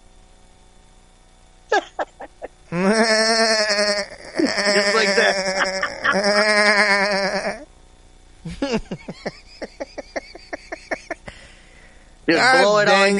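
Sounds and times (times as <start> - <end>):
laughter: 1.8 - 2.5, 4.4 - 7.5, 8.5 - 11.2
goat bleating: 1.8 - 7.4
speech: 12.3 - 13.1.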